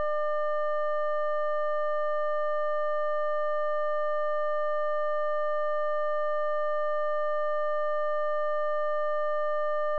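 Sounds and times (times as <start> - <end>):
600 Hz sine tone at minus 20 dB: 0.0 - 9.9.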